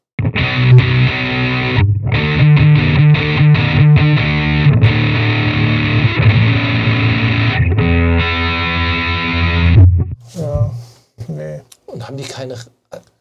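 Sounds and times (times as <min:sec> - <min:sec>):
electric guitar riff through a distortion effects pedal: 0:00.2 - 0:10.1.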